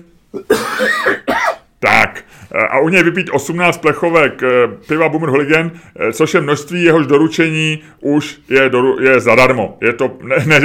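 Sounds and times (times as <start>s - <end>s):
man clearing his throat: 0.3s - 1.7s
speech: 2.8s - 10.6s.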